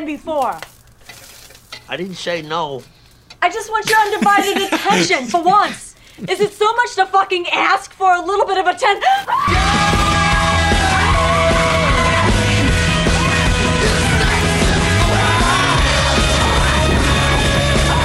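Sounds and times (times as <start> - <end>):
speech: 0.0 - 0.7, 1.9 - 10.0
crackling noise: 0.0 - 18.0
laughter: 3.8 - 6.4
woman screaming in agony while on fire: 9.0 - 12.3.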